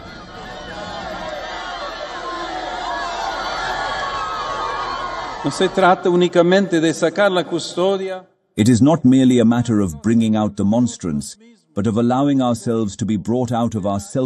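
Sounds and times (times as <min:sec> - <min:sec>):
large crowd cheering: 0:00.0 - 0:07.6
speech: 0:05.4 - 0:14.2.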